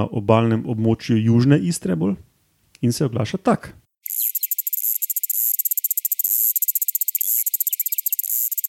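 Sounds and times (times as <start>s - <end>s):
speech: 0.0s - 3.8s
Mediterranean cicada calling: 4.0s - 8.6s.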